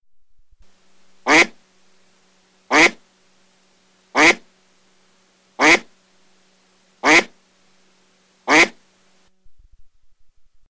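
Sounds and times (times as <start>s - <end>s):
mallard duck calling: 1.3s - 1.6s, 2.7s - 3.0s, 4.1s - 4.5s, 5.6s - 5.9s, 7.0s - 7.4s, 8.5s - 8.8s.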